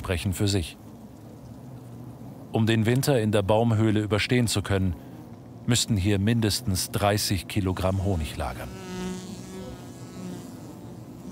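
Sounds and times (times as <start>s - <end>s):
wasps buzzing while raiding a beehive in a tree hollow: 0.0s - 11.3s
speech: 0.1s - 0.8s, 2.5s - 8.9s.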